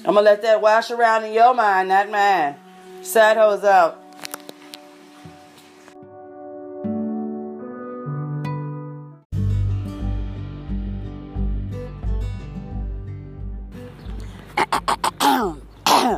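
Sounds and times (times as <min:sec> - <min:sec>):
speech: 0:00.0 - 0:04.0
music: 0:00.0 - 0:16.1
short rough throat-clearing bursts: 0:14.6 - 0:16.1.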